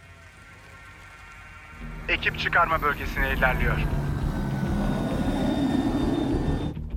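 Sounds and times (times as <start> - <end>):
police helicopter flying with rotor blades chopping: 1.8 - 6.8
speech: 2.1 - 4.1.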